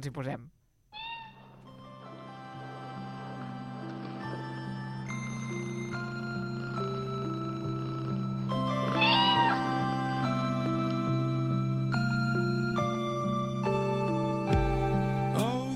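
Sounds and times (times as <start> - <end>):
speech: 0.0 - 0.6
female cat meowing softly: 0.9 - 1.7, 8.6 - 10.3
sustained slowly shifting musical tones: 1.6 - 15.4.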